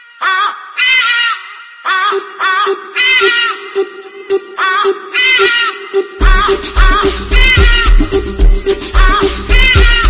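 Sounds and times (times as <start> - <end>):
hadeda ibis calling loudly with harsh nasal honking cries: 0.0 - 10.0.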